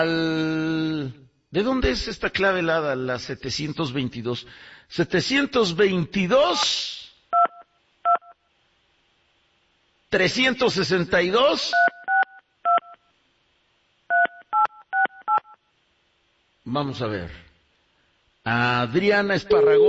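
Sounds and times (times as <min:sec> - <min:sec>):
speech: 0:00.0 - 0:06.9, 0:10.1 - 0:12.0, 0:16.7 - 0:17.5, 0:18.4 - 0:19.8
telephone keypad dialing tones beeping: 0:14.1 - 0:15.6, 0:19.6 - 0:19.8.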